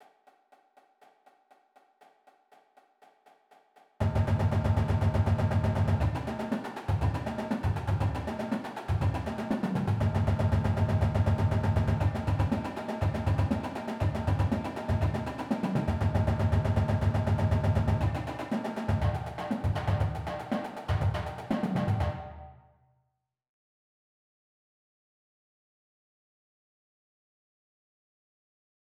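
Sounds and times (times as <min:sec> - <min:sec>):
percussion: 0:00.0 - 0:22.7.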